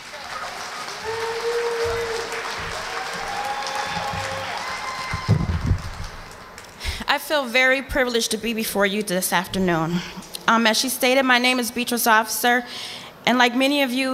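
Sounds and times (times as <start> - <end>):
room full of people clapping: 0.0 - 6.9
speech: 7.3 - 14.1.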